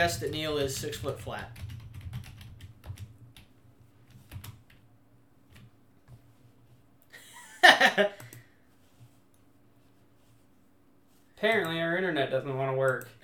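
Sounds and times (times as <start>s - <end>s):
speech: 0.0s - 1.6s, 7.9s - 8.2s, 11.4s - 13.2s
low hum: 0.0s - 13.2s
typing on a computer keyboard hooked up to a TV: 0.1s - 3.5s, 4.1s - 4.8s.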